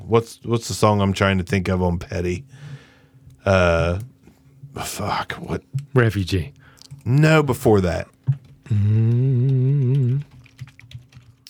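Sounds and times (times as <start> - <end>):
speech: 0.1 - 2.7, 3.4 - 4.1, 4.8 - 10.3
person singing or humming a sustained wavering note: 8.7 - 10.3.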